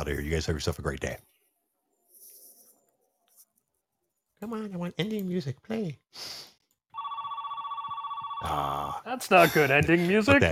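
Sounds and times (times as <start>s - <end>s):
speech: 0.1s - 1.3s, 4.4s - 6.5s, 8.4s - 10.4s
phone ringing with a steady electronic trill: 6.9s - 8.9s.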